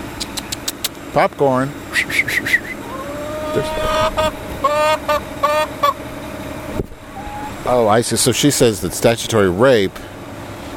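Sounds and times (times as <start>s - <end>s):
speech: 1.2s - 2.2s, 3.6s - 6.1s, 7.6s - 10.1s
steady whine: 1.6s - 10.0s
garbage truck idling with low engine rumble: 2.6s - 10.7s.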